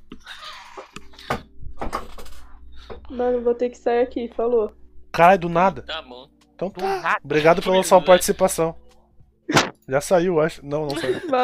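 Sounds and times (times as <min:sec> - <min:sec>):
chair creaking and squeaking as it is shifted: 0:00.2 - 0:03.1
speech: 0:03.1 - 0:08.8, 0:09.9 - 0:11.4
laughter: 0:06.8 - 0:08.6, 0:10.9 - 0:11.4.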